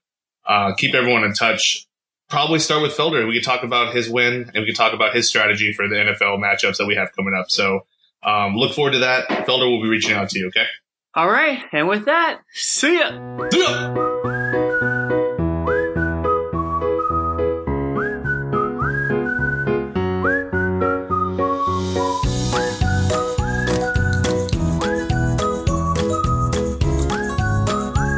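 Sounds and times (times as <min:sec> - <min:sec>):
speech: 0:00.5 - 0:14.6
upbeat instrumental intro music with whistled melody and plucked chords: 0:13.2 - 0:28.1.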